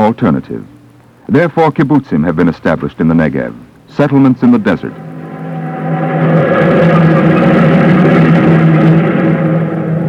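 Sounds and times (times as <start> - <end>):
speech: 0.0 - 0.7, 1.3 - 5.1
heavy truck engines of a caravan of trucks heading into the Negev desert: 4.8 - 10.0.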